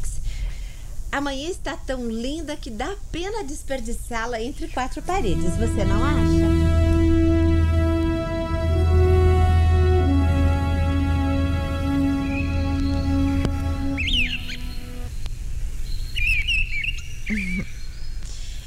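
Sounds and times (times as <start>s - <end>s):
speech: 1.2s - 6.7s
steady humming musical drone: 4.6s - 15.1s
birds chirping and warbling in a garden: 13.9s - 15.0s, 15.8s - 18.6s.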